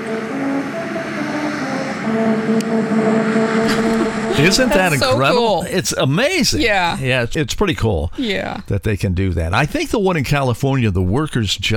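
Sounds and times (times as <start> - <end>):
musical road tonal notes under a car north of Los Angeles: 0.0 - 5.9
speech: 2.1 - 11.7
laughter: 3.6 - 7.2.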